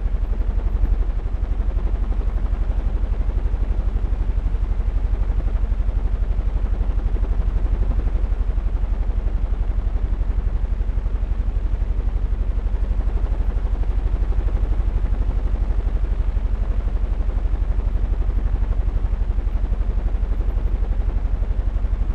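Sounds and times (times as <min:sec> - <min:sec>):
giant fan blade low-frequency rumble: 0:00.0 - 0:22.1.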